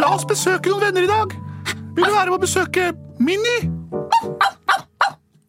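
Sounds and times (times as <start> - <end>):
speech: 0.2 - 1.4, 2.0 - 3.7
dog barking: 4.1 - 5.2.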